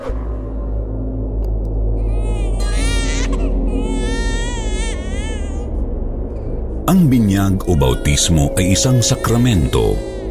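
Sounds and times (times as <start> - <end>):
low rumble: 0.0 - 10.2
baby crying: 2.0 - 5.8, 7.7 - 10.2
speech: 6.9 - 10.1.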